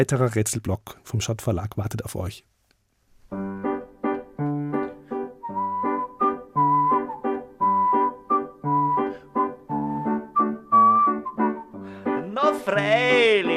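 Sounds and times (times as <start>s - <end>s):
speech: 0.0s - 2.5s
oom-pah-pah backing of plucked chords: 3.4s - 13.5s
whistled melody in bouncy waltz rhythm: 3.7s - 13.5s.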